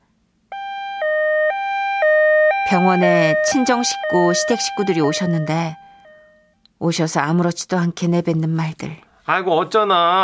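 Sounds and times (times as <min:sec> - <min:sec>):
ambulance siren wailing in a two-tone hi-lo pattern: 0:00.5 - 0:06.5
speech: 0:02.7 - 0:05.8, 0:06.8 - 0:10.2.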